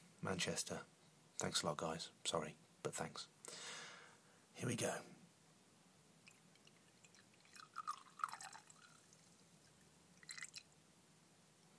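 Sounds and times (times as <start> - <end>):
speech: 0.2 - 3.7, 4.6 - 5.2
50% strength drink dripping into a small glass: 6.2 - 9.3, 10.2 - 10.7.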